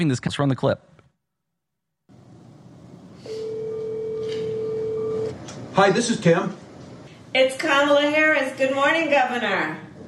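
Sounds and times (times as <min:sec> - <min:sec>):
speech: 0:00.0 - 0:00.9, 0:05.8 - 0:06.6, 0:07.3 - 0:09.8
steady electronic telephone tone: 0:03.2 - 0:05.4.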